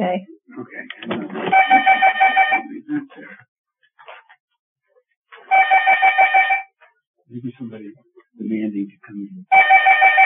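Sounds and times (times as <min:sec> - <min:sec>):
speech: 0:00.0 - 0:00.3
telephone ringing with rapid electronic trilling: 0:01.5 - 0:02.7, 0:05.5 - 0:06.7, 0:09.5 - 0:10.2.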